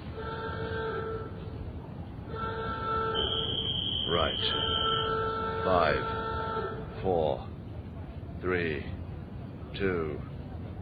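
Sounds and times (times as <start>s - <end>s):
demolition site warning horn before a factory chimney blast: 0.0s - 1.6s, 2.3s - 7.0s
rumbling outdoor background at a demolition site: 0.0s - 10.8s
speech: 4.2s - 4.8s, 5.6s - 6.2s, 7.0s - 7.5s, 8.4s - 9.0s, 9.7s - 10.3s.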